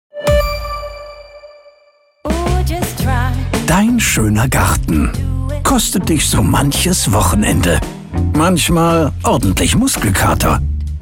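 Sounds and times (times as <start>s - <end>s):
doorbell chime: 0.2s - 2.2s
speech: 2.6s - 10.7s.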